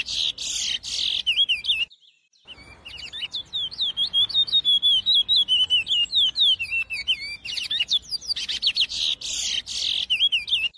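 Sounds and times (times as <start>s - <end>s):
chestnut-bellied seed finch Sporophila angolensis singing whistled and buzzy notes: 0.0s - 10.7s.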